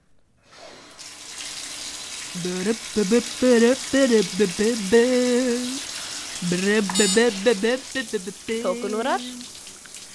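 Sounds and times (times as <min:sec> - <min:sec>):
running shower water hissing: 0:00.5 - 0:10.1
speech: 0:02.3 - 0:09.6
man singing a melodic tune in a shower: 0:02.4 - 0:09.4.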